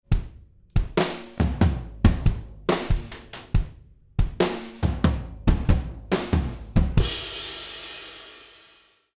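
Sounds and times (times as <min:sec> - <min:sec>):
drums with EQ bypassed: 0:00.0 - 0:09.1.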